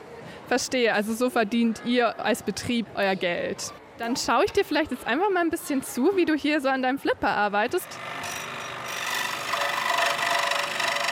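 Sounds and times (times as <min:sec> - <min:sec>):
speech: 0:00.5 - 0:08.3
electric saw cutting pieces of wood: 0:07.8 - 0:11.0.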